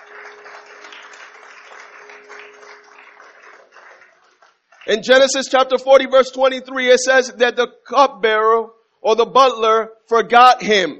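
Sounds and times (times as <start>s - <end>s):
audience applause: 0.0s - 5.0s
speech: 4.9s - 10.9s.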